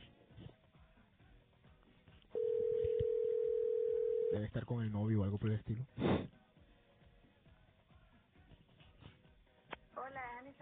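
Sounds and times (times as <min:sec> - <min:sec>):
telephone tone on an outgoing call: 0:02.4 - 0:04.4
speech: 0:04.4 - 0:06.3.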